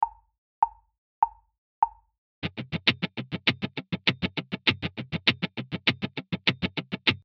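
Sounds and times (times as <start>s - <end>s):
funk accenting sixteenth-note muted strums: 2.4s - 7.2s.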